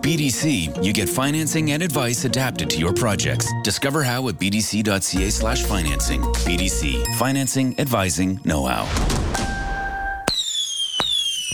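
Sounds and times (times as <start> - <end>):
speech: 0.0 - 9.4
fireworks exploding with sharp bangs: 8.9 - 11.5
high whistling tones of fireworks sliding down in pitch: 10.2 - 11.5.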